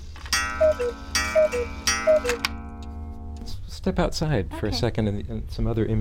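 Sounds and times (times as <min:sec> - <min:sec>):
grandfather cuckoo clock striking: 0:00.2 - 0:03.6
speech: 0:00.8 - 0:02.6, 0:03.8 - 0:06.0.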